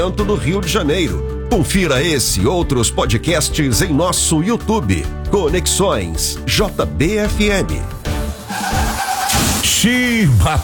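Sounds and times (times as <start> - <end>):
speech: 0.0 - 8.0, 9.8 - 10.6
car tires screeching and skidding: 8.2 - 10.6
harsh noisy bursts: 8.2 - 10.6.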